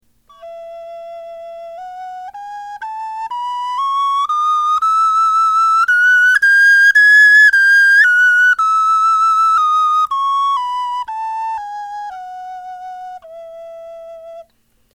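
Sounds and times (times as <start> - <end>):
bone flute playing a scale: 0.3 - 14.5.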